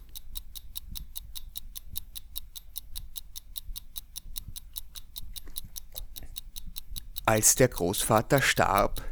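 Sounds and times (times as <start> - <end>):
clock ticking unevenly: 0.0 - 9.1
speech: 7.3 - 9.1.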